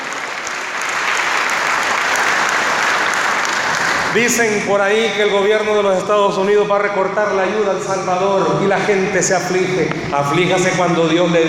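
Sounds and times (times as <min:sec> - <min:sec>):
crowd applauding: 0:00.0 - 0:04.7
speech: 0:04.2 - 0:11.4.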